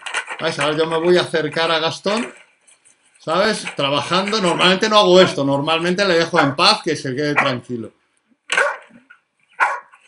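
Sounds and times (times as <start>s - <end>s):
speech: 0.4s - 2.4s, 3.2s - 8.0s
dog barking: 6.3s - 6.6s, 7.4s - 7.6s, 8.5s - 9.0s, 9.6s - 10.0s.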